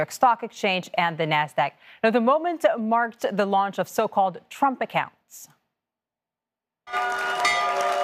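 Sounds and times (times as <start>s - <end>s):
speech: 0.0s - 5.6s, 6.9s - 8.0s
stock exchange opening bell ringing: 6.9s - 8.0s.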